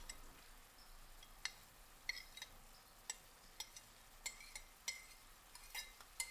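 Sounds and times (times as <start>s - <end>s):
faint steady sizzle from a pan: 0.0s - 6.3s
knife scraping chilis from plate into pan: 1.4s - 6.3s.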